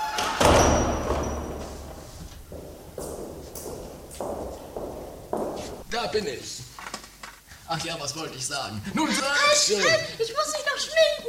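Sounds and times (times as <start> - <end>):
castle door being shut: 0.1 - 6.1
speech: 6.1 - 6.7, 7.8 - 11.1.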